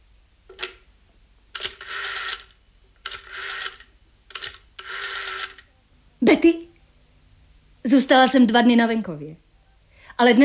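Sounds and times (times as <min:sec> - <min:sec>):
telephone dial clicking and whirring as it spins back: 0:01.6 - 0:05.7
speech: 0:06.2 - 0:06.7, 0:07.9 - 0:09.4, 0:10.2 - 0:10.4.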